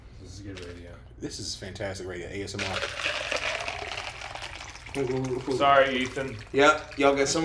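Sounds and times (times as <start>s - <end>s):
speech: 0.2s - 3.4s, 5.0s - 7.4s
water pouring into a glass: 2.6s - 7.4s.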